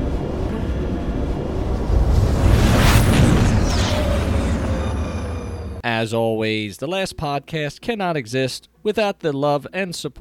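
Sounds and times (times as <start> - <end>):
spaceship dropping out of hyperspace with throttle dialed back: 0.0 - 5.8
bright whoosh: 0.5 - 5.8
speech: 6.0 - 10.1.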